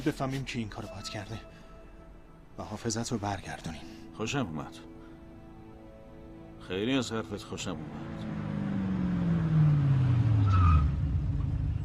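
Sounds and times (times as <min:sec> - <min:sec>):
speech: 0:00.0 - 0:01.6, 0:02.6 - 0:04.9, 0:06.7 - 0:08.6
car engine droning as it passes: 0:07.5 - 0:11.8
car tires squealing in a skid: 0:08.2 - 0:11.7.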